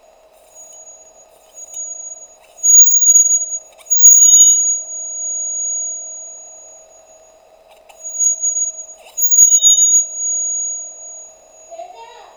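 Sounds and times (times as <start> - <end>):
75 cm aluminium shrieking rod vibrating longitudinally with rosin: 0.6 - 7.0, 7.9 - 12.2.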